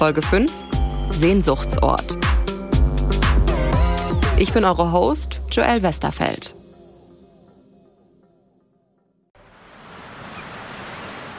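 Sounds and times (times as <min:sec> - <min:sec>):
speech: 0:00.0 - 0:02.3, 0:04.4 - 0:06.6
soft musical passage: 0:00.0 - 0:09.3
ocean surf below a sea cliff: 0:09.4 - 0:11.3.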